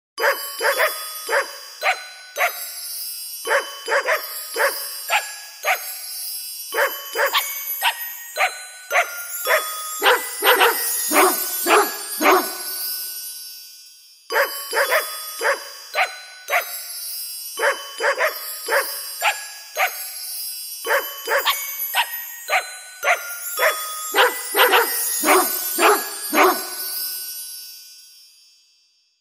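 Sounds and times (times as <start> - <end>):
dog barking: 0.2 - 2.6, 3.5 - 5.8, 6.8 - 12.8, 14.3 - 16.7, 17.6 - 20.0, 20.9 - 26.9
dog singing: 0.2 - 2.6, 3.5 - 5.8, 6.8 - 12.8, 14.4 - 16.7, 20.9 - 26.9
birthday song: 0.2 - 13.4, 14.3 - 27.5.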